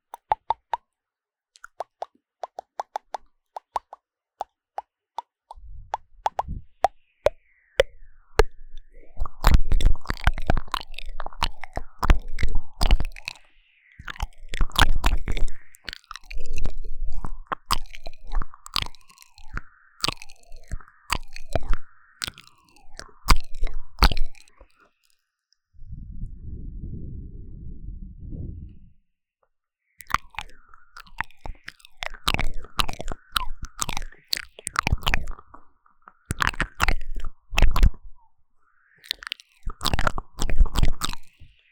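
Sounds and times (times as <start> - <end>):
wet mouth clicks and pops: 0.0 - 0.9, 1.6 - 25.1, 30.0 - 38.2, 39.0 - 41.6
low hum: 25.8 - 29.0.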